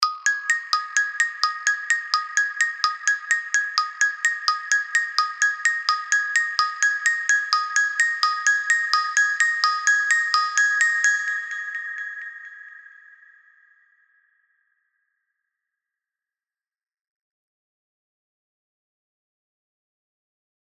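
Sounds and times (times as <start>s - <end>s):
Polar bell ringing: 0.0s - 12.8s.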